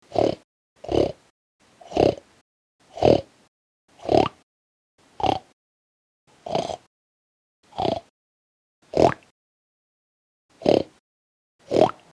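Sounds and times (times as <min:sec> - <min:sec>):
pig grunting: 0:00.1 - 0:01.3, 0:01.9 - 0:02.2, 0:02.9 - 0:03.3, 0:04.0 - 0:04.4, 0:05.2 - 0:05.6, 0:06.4 - 0:06.9, 0:07.8 - 0:08.1, 0:08.9 - 0:09.2, 0:10.6 - 0:11.0, 0:11.7 - 0:12.0.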